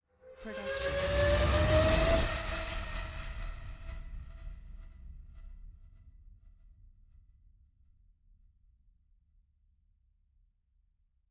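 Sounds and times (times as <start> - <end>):
buzzing riser: 0.5 - 3.0.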